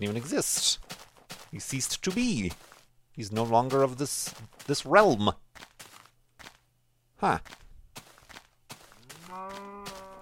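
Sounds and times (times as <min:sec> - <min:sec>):
speech: 0:00.0 - 0:00.9, 0:01.5 - 0:05.4, 0:07.2 - 0:07.6
cow mooing, long low drawn-out call: 0:09.0 - 0:10.1.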